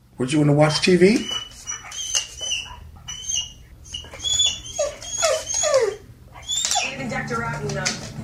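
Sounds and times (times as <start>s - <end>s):
low hum: 0.0s - 8.2s
speech: 0.2s - 1.4s
young black labrador whimpering and yelping: 1.1s - 7.0s.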